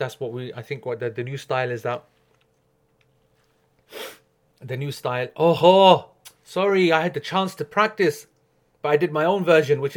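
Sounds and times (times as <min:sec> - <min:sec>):
speech: 0:00.0 - 0:02.2, 0:03.9 - 0:09.9
quiet hum: 0:00.0 - 0:09.9
stifled sneeze: 0:03.9 - 0:04.3.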